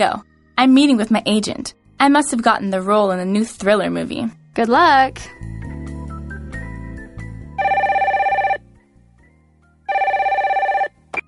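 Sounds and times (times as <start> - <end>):
speech: 0.0 - 5.5
telephone ringing with electronic trilling: 7.6 - 8.6, 9.9 - 11.0.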